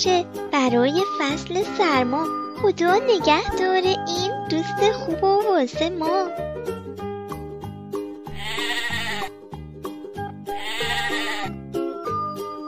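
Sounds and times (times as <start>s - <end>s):
speech: 0.0s - 6.5s
bouncy rhythmic musical backing: 0.0s - 12.6s
sheep bleating: 8.3s - 9.3s, 10.5s - 11.6s.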